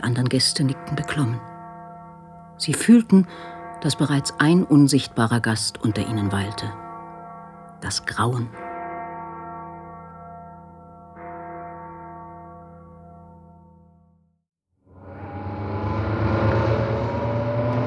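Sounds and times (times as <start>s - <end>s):
speech: 0.1s - 1.5s, 2.6s - 6.8s, 7.8s - 8.6s
very old truck rumbling over a bumpy dirt road: 15.0s - 17.8s.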